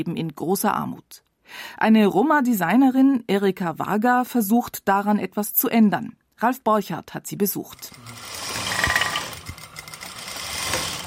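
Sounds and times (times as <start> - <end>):
speech: 0.0 - 8.5
sewing machine stitching fabric of an old Roma costume in a Budapest apartment: 7.7 - 11.0.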